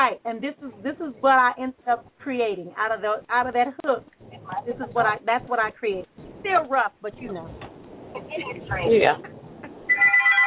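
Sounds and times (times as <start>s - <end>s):
speech: 0.0s - 9.4s
thin-sounding voices: 0.4s - 9.4s
phone ringing with an electronic ringtone for an incoming call: 9.9s - 10.4s.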